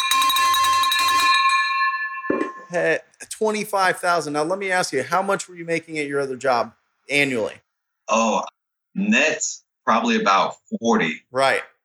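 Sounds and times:
big silver bell clanging loudly and rapidly: 0.0s - 3.0s
speech: 2.7s - 11.7s.

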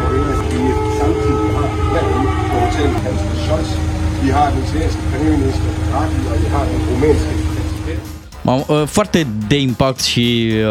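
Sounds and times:
air raid siren wailing at the presidential palace in Kyiv: 0.0s - 8.3s
general outdoor commotion at the presidential palace in Kyiv: 0.0s - 8.3s
speech: 4.4s - 7.4s, 8.4s - 10.6s.

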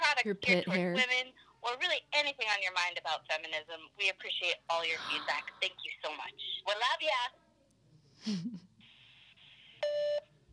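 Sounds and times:
speech: 0.2s - 7.4s, 8.2s - 8.7s
phone voicemail beep: 9.8s - 10.2s.

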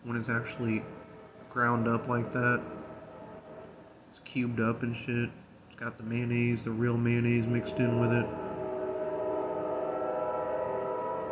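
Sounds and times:
tonal drone from a train passing outside: 0.0s - 11.3s
speech: 0.1s - 2.8s, 4.3s - 8.4s.

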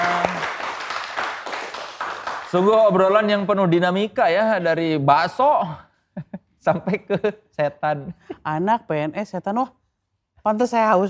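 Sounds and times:
audience applause: 0.0s - 3.2s
speech: 2.5s - 5.9s, 6.6s - 9.8s, 10.4s - 11.0s
laughter: 6.2s - 7.4s.

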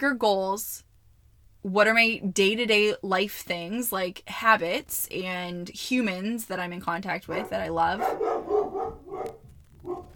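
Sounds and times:
speech: 0.0s - 0.9s, 1.6s - 8.4s
dog barking: 7.3s - 10.1s.

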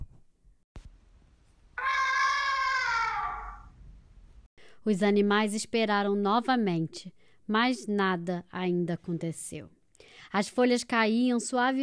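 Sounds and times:
elephant blowing hard through its trunk: 1.8s - 3.7s
speech: 4.8s - 11.8s.

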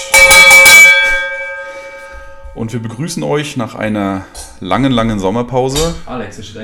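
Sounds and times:
bell clanging: 0.0s - 3.1s
speech: 2.6s - 6.6s.

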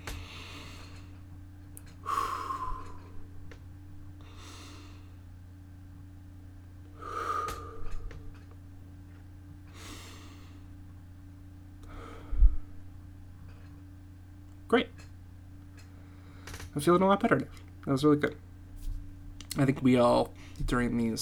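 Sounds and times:
big deep breaths: 0.0s - 1.3s, 1.9s - 3.4s, 4.2s - 5.3s, 6.9s - 8.5s, 9.6s - 10.8s, 11.8s - 12.8s, 15.8s - 16.7s
speech: 16.8s - 18.4s, 19.6s - 21.2s.

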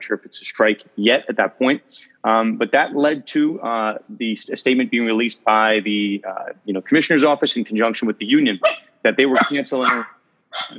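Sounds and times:
speech: 0.0s - 10.7s
female dog barking: 8.6s - 10.7s.

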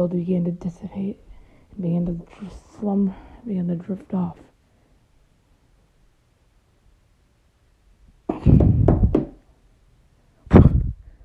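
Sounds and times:
speech: 0.0s - 4.5s
solid knocking on a door: 8.3s - 9.4s.

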